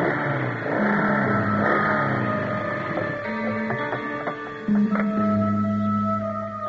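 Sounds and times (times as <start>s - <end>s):
motorbike engines ridden by security guards roaring and revving: 0.0s - 6.6s.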